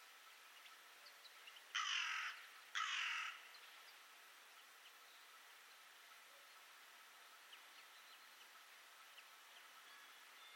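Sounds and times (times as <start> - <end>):
faint background hiss: 0.0 - 10.5
bird rasping calls: 1.7 - 3.4.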